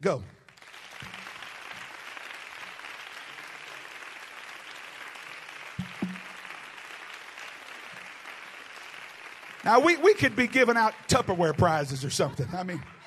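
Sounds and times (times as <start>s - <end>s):
speech: 0.0s - 0.4s, 9.6s - 13.0s
audience clapping: 0.4s - 12.8s
thumps: 5.8s - 6.4s.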